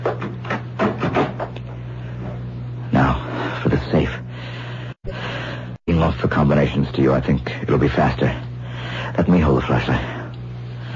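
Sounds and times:
door being closed: 0:00.0 - 0:01.6
low electrical hum: 0:00.0 - 0:10.9
speech: 0:07.0 - 0:08.5, 0:09.2 - 0:10.2.

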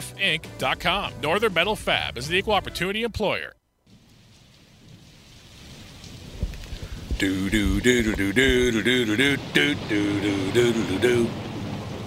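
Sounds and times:
speech: 0:00.0 - 0:03.6, 0:07.2 - 0:11.5
steady rain hissing: 0:03.9 - 0:12.0.

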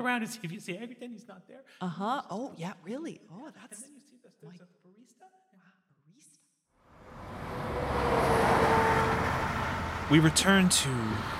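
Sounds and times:
speech: 0:00.0 - 0:05.4, 0:10.1 - 0:11.3
busy street traffic with fast-moving vehicles: 0:07.0 - 0:11.3.

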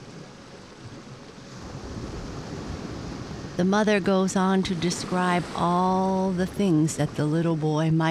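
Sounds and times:
ocean waves washing onto the shore: 0:00.0 - 0:08.0
wind: 0:00.0 - 0:08.0
speech: 0:03.6 - 0:08.0.

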